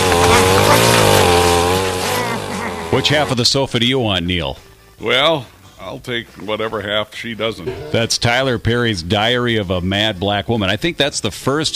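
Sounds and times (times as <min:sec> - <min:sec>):
McCulloch chainsaw engine revving: 0:00.0 - 0:03.5
speech: 0:02.9 - 0:11.7.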